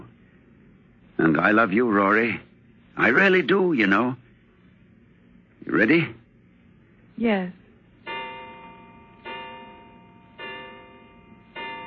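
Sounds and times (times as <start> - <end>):
speech: 1.2 - 4.2, 5.6 - 6.2, 7.2 - 7.6
clock striking the hour with resonant chimes: 8.1 - 11.8.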